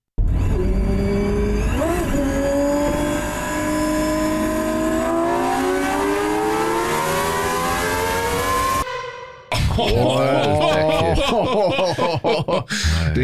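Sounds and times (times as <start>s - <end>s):
V12 supercar engine revving to 12000 rpm: 0.2s - 8.8s
laughter: 9.5s - 13.2s.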